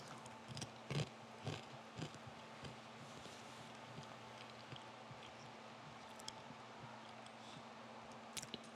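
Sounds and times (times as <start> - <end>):
people chewing communion crackers during a communion service: 0.0 - 2.8, 3.8 - 7.4
steady low electrical hum: 0.0 - 8.7.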